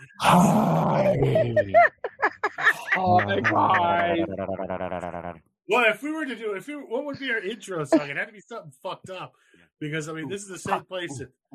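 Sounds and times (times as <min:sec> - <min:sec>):
person growling roar imitating a dinosaur: 0:00.1 - 0:01.7, 0:03.0 - 0:05.4
person guttural grunts and vocal noises: 0:00.2 - 0:01.7, 0:03.0 - 0:05.4
speech: 0:00.2 - 0:02.0, 0:03.0 - 0:11.5
laughter: 0:00.8 - 0:05.4.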